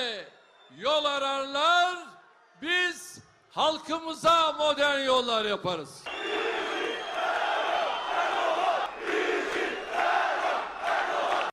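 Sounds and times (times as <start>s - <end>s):
speech: 0.0s - 6.5s
large crowd chanting political slogans in unison: 6.1s - 11.5s.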